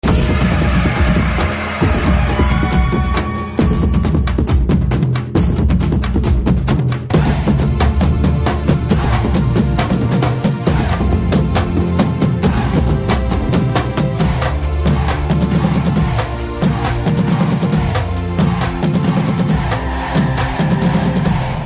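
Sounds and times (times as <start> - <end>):
Telugu drum beats ringtone: 0.0 - 21.6.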